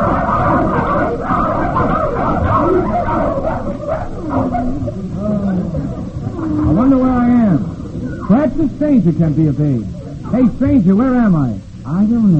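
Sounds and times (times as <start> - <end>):
pack of sled dogs barking and yipping: 0.0 - 7.0
noisy crowded background: 0.0 - 12.3
speech: 9.0 - 12.3.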